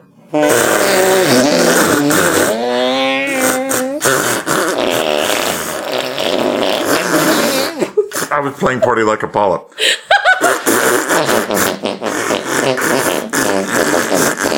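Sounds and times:
speech: 0.3s - 0.8s, 8.5s - 10.0s, 11.1s - 14.3s
buzzy fart noises playing a tune: 0.3s - 8.4s, 10.4s - 14.5s.

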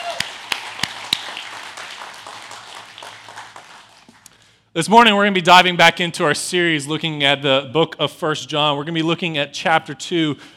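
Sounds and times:
audience applause: 0.0s - 4.3s
sharp separate claps: 0.0s - 4.4s
speech: 4.8s - 10.5s.

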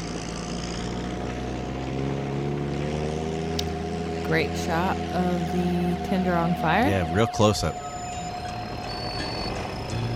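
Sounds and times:
heavy bulldozer engine rumbling and grinding: 0.0s - 10.1s
speech: 4.3s - 7.8s
electronic reversing beep: 5.8s - 10.1s.

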